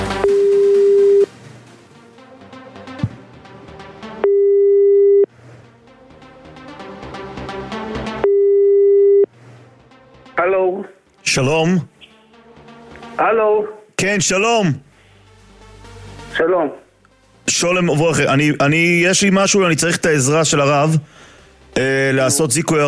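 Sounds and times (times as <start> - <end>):
telephone line ringing tone during a live on-air call: 0.2 - 1.3, 4.2 - 5.3, 8.2 - 9.3
speech: 10.4 - 12.0, 13.2 - 14.9, 16.3 - 16.8, 17.5 - 22.8.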